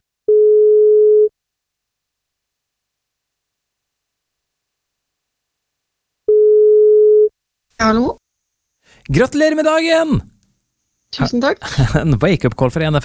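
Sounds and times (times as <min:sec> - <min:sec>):
telephone ringback tone while calling: 0:00.3 - 0:01.3, 0:06.3 - 0:07.3
speech: 0:07.8 - 0:08.2, 0:08.9 - 0:10.3, 0:11.1 - 0:13.0.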